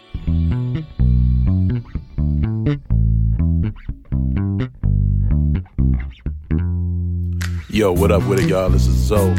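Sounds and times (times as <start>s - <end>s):
instrumental music track with choppy chords and punchy low-end hits: 0.0s - 9.3s
speech: 7.8s - 9.3s.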